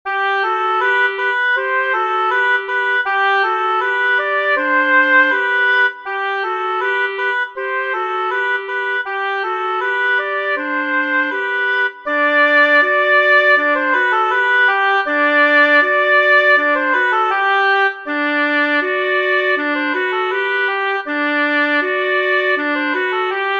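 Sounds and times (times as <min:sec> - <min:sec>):
keyless clarinet playing: 0:00.1 - 0:23.5.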